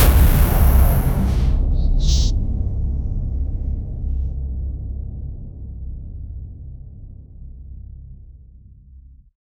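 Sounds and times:
dark energy impact: 0.0 - 6.5.

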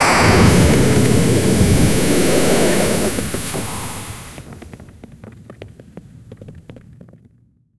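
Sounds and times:
pixel game explosion: 0.0 - 4.5.

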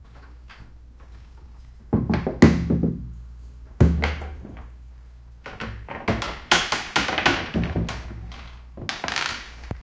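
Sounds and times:
loud wooden chair breaking in a small room: 1.9 - 3.1, 3.8 - 4.7, 5.5 - 9.8.

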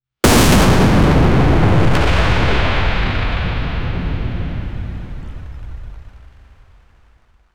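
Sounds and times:
epic sci fi energy explosion: 0.2 - 7.0.

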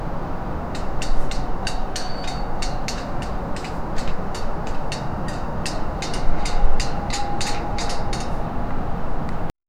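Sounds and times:
daytime town ambience: 0.0 - 9.6.

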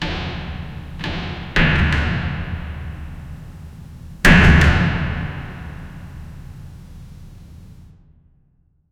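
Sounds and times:
windows slamming shut: 0.0 - 7.6.

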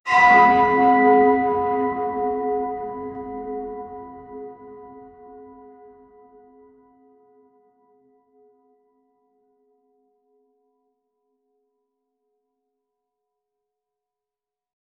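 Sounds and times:
church bell horror hit: 0.1 - 9.0.

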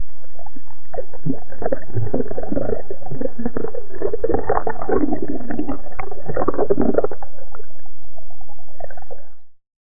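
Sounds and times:
single deep realistic underwater sound: 0.0 - 9.6.

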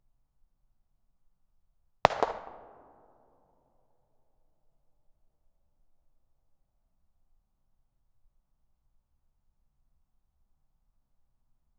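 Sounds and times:
distant 9mm gunshot: 2.1 - 3.1.

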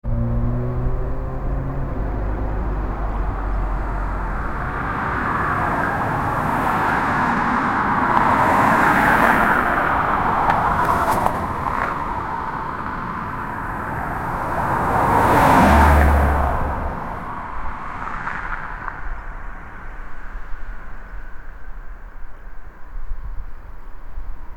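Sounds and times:
car driving off and accelerating: 0.0 - 17.6.

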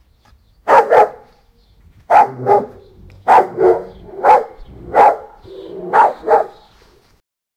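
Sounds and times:
pit bull barking: 0.7 - 1.3, 2.1 - 6.7
pit bull low rumbling growl: 2.3 - 6.6.

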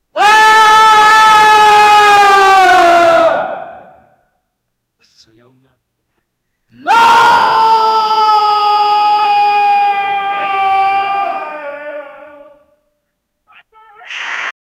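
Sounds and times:
men screaming creepily: 0.2 - 4.0, 6.8 - 12.6.

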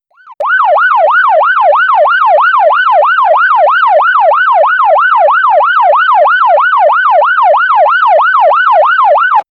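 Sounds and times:
distant police siren: 0.1 - 9.5.

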